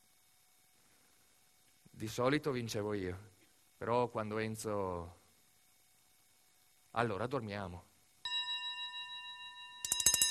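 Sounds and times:
speech: 2.0 - 5.2, 6.9 - 7.9
telephone ringing at night: 8.3 - 10.2.

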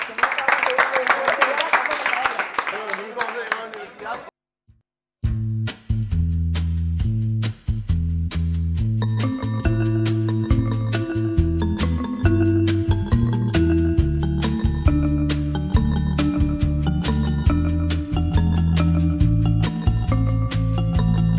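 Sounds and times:
audience applause: 0.0 - 4.3
music: 5.2 - 21.3.

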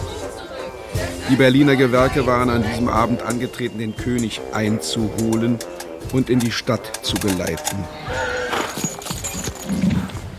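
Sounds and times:
speech: 1.3 - 8.4
horses' hooves clip-clopping in a ceremonial procession: 5.0 - 10.3.

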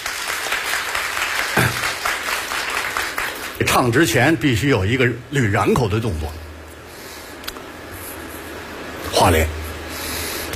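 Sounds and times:
audience applause at a Beijing opera performance: 0.0 - 3.6
speech: 3.6 - 6.4, 9.2 - 9.6.

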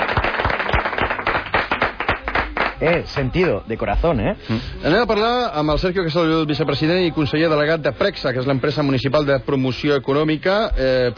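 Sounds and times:
small group of studio guests clapping: 0.0 - 3.4
speech: 2.8 - 11.1.

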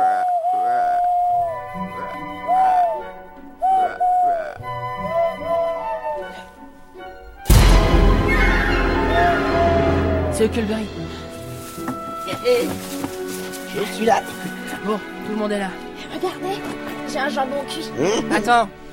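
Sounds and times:
owl hoot imitated by whistling through cupped hands over the thumbs: 0.0 - 1.5, 3.6 - 6.5
loud burst of broadband noise: 7.5 - 11.3
speech: 10.4 - 11.0, 12.4 - 12.9, 13.8 - 18.8.

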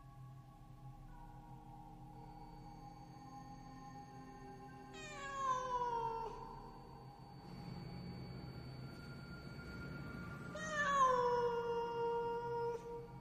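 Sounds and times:
black cat yowling from bushes: 5.0 - 6.6, 10.5 - 13.1.

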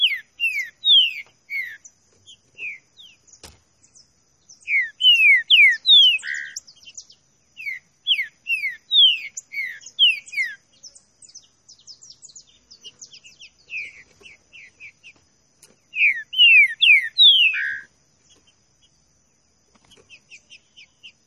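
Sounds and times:
green-winged saltator classic song of whistled notes: 4.6 - 6.5, 7.6 - 10.5, 16.0 - 17.9.

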